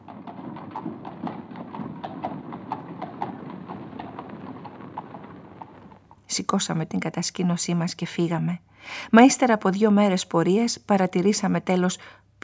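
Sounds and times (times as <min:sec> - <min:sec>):
horse hooves clip-clopping while galloping: 0:00.0 - 0:06.7
dull rumbling background: 0:00.0 - 0:07.1
speech: 0:06.3 - 0:12.4.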